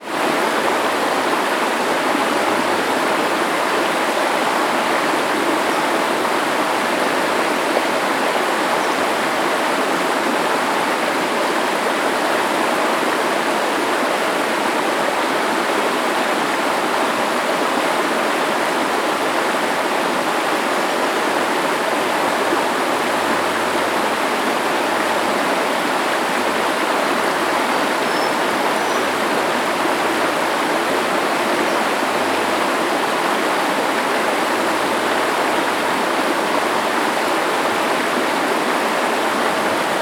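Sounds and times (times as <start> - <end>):
creek flowing in a forest: 0.0 - 40.0
waterfall in a forest: 0.0 - 40.0
forest birds: 27.6 - 29.2.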